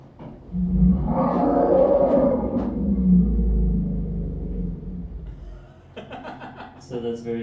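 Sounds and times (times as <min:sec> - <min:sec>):
elephant greeting rumble: 0:00.3 - 0:05.7
laughter: 0:05.6 - 0:06.9
speech: 0:07.0 - 0:07.4.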